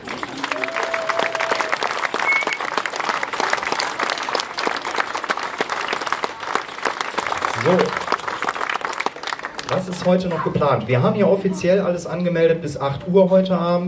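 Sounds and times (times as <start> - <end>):
audience applause: 0.0 - 10.4
faint whistles or cheers: 0.3 - 2.9
speech: 7.7 - 8.0, 9.9 - 13.8.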